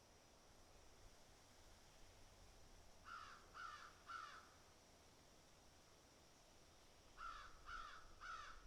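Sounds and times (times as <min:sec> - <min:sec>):
crows giving harsh caws: 0:03.1 - 0:04.4, 0:07.2 - 0:08.6.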